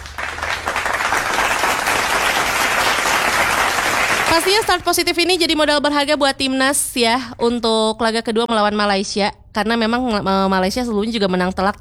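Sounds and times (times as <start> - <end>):
large crowd roaring and applauding: 0.0 - 5.9
laughter: 0.0 - 8.5, 9.4 - 11.7
speech: 4.4 - 11.7.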